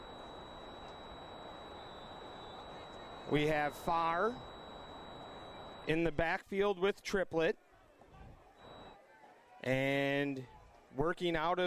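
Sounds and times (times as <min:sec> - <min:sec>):
thin steady high-pitched electronic tone whining: 0:00.0 - 0:05.9, 0:08.6 - 0:09.0
broadband hiss and static: 0:00.0 - 0:06.0
speech: 0:03.3 - 0:04.5, 0:05.8 - 0:07.6, 0:09.6 - 0:11.6.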